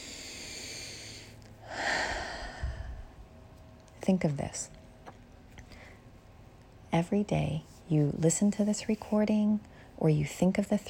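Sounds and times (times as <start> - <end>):
deep breath during a morning gratitude meditation: 0.0 - 3.2
faint steady hum: 0.0 - 10.8
speech: 4.1 - 4.8, 6.9 - 10.8.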